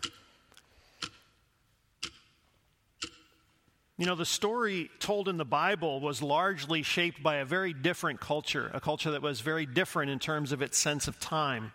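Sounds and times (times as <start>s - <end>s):
clock ticking with crisp sharp clicks: 0.0s - 4.5s
speech: 4.0s - 11.7s.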